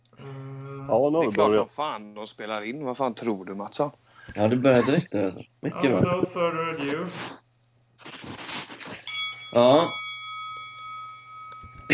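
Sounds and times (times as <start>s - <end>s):
speech: 0.9s - 7.4s, 9.5s - 10.0s
doorbell ringing with a sustained metallic tone: 9.0s - 11.9s.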